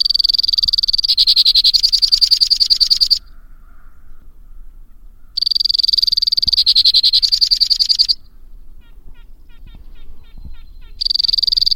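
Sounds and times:
white-winged crossbill song trills: 0.0s - 11.7s.

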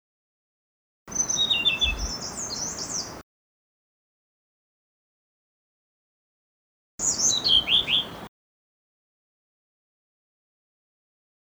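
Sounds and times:
blue-throated blue flycatcher song: 1.1s - 3.2s, 7.0s - 8.3s.

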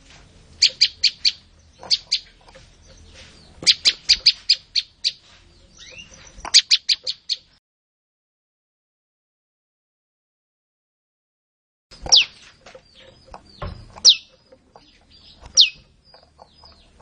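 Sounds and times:
olive-backed tailorbird singing loud high clipped notes: 0.0s - 7.6s, 11.9s - 17.0s.

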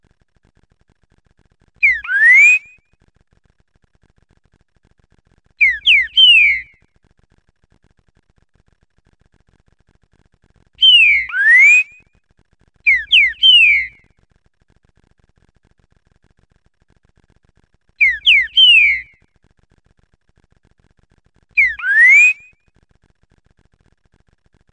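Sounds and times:
green-winged saltator song of rich slurred rising and falling whistles: 1.8s - 2.8s, 5.6s - 6.8s, 10.8s - 12.0s, 12.9s - 14.0s, 18.0s - 19.2s, 21.6s - 22.5s.

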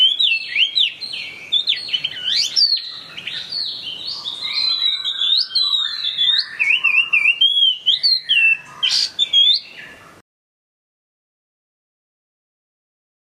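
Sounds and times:
Chinese hwamei singing in full song: 0.0s - 10.0s.

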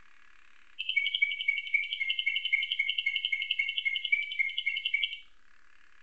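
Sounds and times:
canary song tutored with nightingale song: 0.8s - 5.3s.

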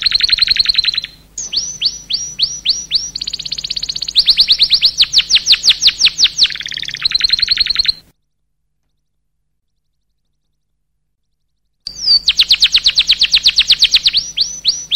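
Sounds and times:
canary singing sweeping whistles and trills: 0.0s - 8.1s, 11.4s - 14.9s.

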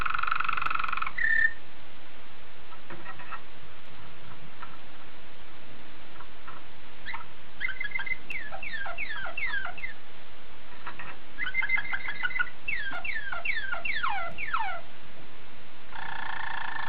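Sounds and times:
Waterslager canary singing: 0.0s - 1.6s, 2.7s - 3.5s, 6.2s - 10.0s, 10.7s - 14.9s, 15.9s - 16.8s
steady hiss: 0.0s - 13.3s, 14.3s - 16.8s.

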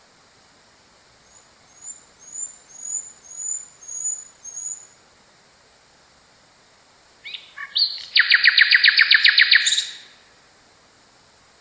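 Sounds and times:
nightingale giving notes and a rattle of rapid repeated notes: 1.2s - 5.0s, 7.2s - 10.2s.

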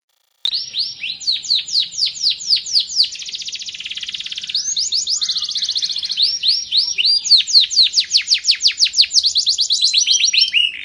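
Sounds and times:
Sekar Jagad canary singing: 0.2s - 10.8s.

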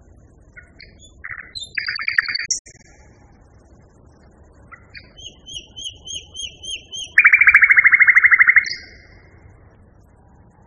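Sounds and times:
common nightingale song variation: 0.4s - 3.2s, 4.6s - 9.6s.

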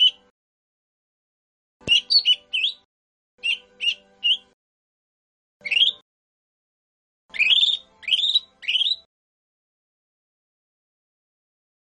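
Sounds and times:
lesser green leafbird song: 0.0s - 0.3s, 1.8s - 4.6s, 5.6s - 6.0s, 7.3s - 9.1s.

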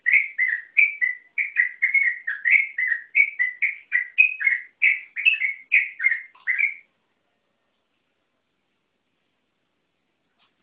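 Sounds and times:
Yellow-vented bulbul continuous long rapid-fire song: 0.0s - 6.9s.

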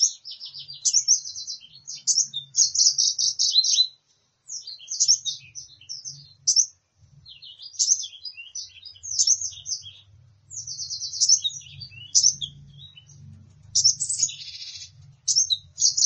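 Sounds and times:
sunbird twittering song used as a lure: 0.0s - 16.0s.

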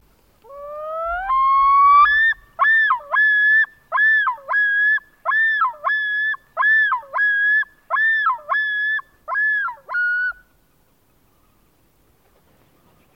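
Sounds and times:
lun bird calling: 0.4s - 10.5s.

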